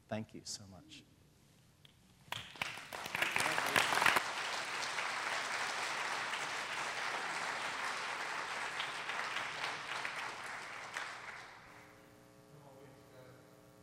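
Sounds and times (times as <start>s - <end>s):
speech: 0.1s - 1.2s
audience applause: 2.3s - 11.9s.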